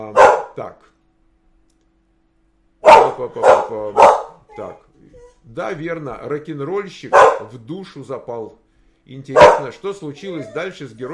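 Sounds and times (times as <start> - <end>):
dog barking: 0.0 - 0.6, 2.8 - 4.4, 7.1 - 7.5, 9.3 - 9.8
speech: 0.0 - 1.0, 3.2 - 11.1.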